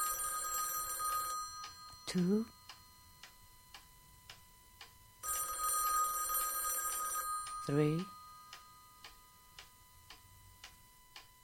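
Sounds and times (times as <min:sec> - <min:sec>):
old-fashioned telephone bell ringing: 0:00.0 - 0:03.0, 0:05.2 - 0:09.4
speech: 0:02.1 - 0:02.6, 0:07.7 - 0:08.2.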